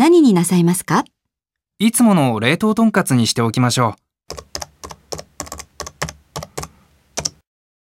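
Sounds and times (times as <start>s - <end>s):
speech: 0.0s - 1.2s, 1.8s - 4.5s
keystrokes on a computer keyboard typing a product code: 4.3s - 7.4s.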